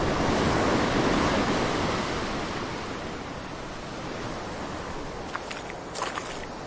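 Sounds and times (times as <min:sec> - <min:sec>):
windy North Sea surf at high tide: 0:00.0 - 0:06.6
faint crunching steps: 0:05.3 - 0:06.6.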